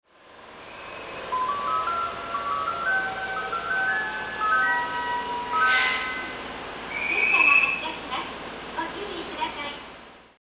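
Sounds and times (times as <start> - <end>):
platform 4 station departure melody at Kamishakujii: 0.3 - 8.1.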